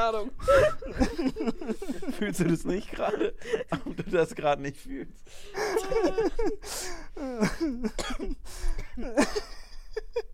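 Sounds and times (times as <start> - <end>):
laughter: 0.0 - 4.6, 5.4 - 8.0, 9.0 - 10.3
speech: 0.0 - 10.3
person coughing from stress: 7.3 - 9.4.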